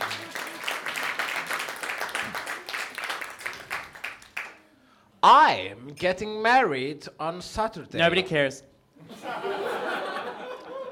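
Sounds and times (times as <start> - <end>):
small group applauding: 0.0 - 4.7
speech: 5.2 - 9.7
laughter: 9.0 - 10.9.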